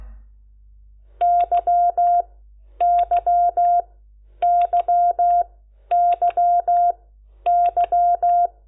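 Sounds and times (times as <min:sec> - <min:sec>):
Morse code beeps spelling the letters Q and Y: 0:01.2 - 0:02.2, 0:02.8 - 0:03.8, 0:04.4 - 0:08.5.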